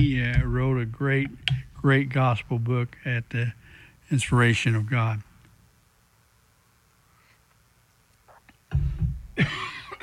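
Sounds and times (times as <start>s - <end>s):
speech: 0.0s - 5.3s, 8.7s - 10.0s
cough with a throaty rumble and bright rasp: 9.4s - 10.0s.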